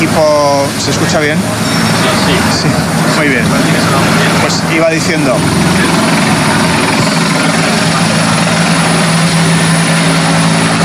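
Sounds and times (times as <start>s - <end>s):
aircraft roaring over a wildfire: 0.0s - 10.8s
helicopter rotor drone: 0.0s - 10.8s
speech: 0.2s - 7.0s.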